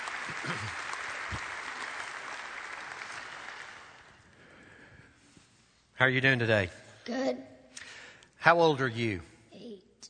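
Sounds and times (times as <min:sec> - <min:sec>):
audience applauding to encourage a boy called to the front: 0:00.0 - 0:04.4
speech: 0:00.3 - 0:01.5, 0:06.0 - 0:07.5, 0:08.4 - 0:09.3.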